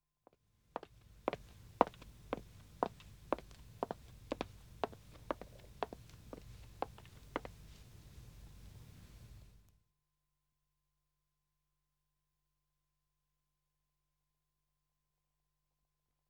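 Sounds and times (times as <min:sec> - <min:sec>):
woman's footsteps on dead wood: 0:00.8 - 0:07.7.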